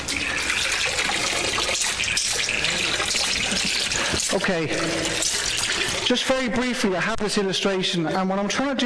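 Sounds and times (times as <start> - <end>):
water running from a tap into a container: 0.1 - 6.3
speech: 4.5 - 5.4, 6.1 - 8.8.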